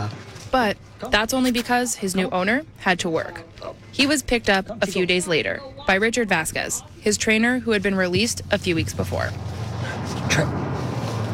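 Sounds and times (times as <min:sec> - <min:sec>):
speech: 0:00.5 - 0:10.6
truck passing by with engine rumble and road noise: 0:08.3 - 0:11.3.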